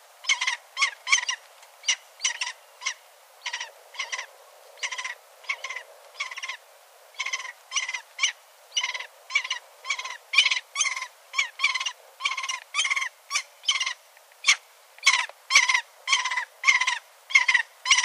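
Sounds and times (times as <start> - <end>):
Lanner falcon harsh chattering calls: 0.2 - 18.0.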